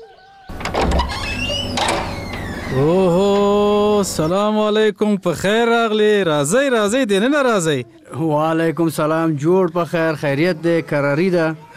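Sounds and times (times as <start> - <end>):
scraping squeaking bursts of a door opening: 0.3 - 4.3
door opening in a home: 0.5 - 4.3
speech: 2.7 - 3.2, 4.1 - 11.7.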